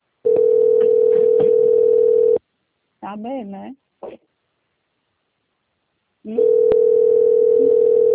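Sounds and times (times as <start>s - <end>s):
steady telephone line tone while waiting to connect: 0.2s - 2.4s, 6.3s - 8.1s
speech: 3.1s - 3.9s, 6.3s - 7.0s.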